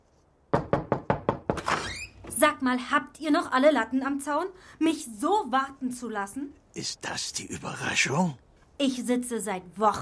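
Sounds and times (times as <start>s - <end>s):
firm knocks on a door: 0.5s - 1.7s
squeaky creak: 1.6s - 2.4s
speech: 2.4s - 10.0s.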